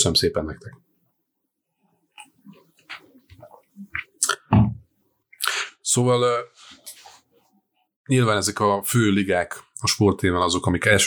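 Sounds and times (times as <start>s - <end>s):
speech: 0.0s - 0.9s, 6.0s - 6.6s, 8.1s - 11.0s
person sipping a beverage: 2.2s - 4.5s, 5.4s - 5.8s
wet mouth clicks: 2.2s - 4.6s, 5.4s - 5.7s
person gulping and swallowing a beverage: 2.2s - 4.8s, 5.4s - 5.7s.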